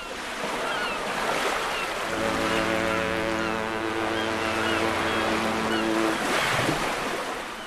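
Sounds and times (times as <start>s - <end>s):
steady wind in a harbour: 0.0s - 7.6s
deep ship horn long low blast: 2.1s - 6.9s.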